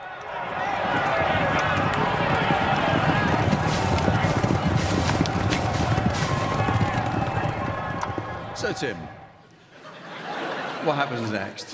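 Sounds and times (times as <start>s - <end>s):
horse race crowd roar: 0.0s - 10.9s
many horses galloping in a horse race: 0.3s - 9.2s
laughter: 8.6s - 11.6s
speech: 8.7s - 9.2s, 10.8s - 11.7s.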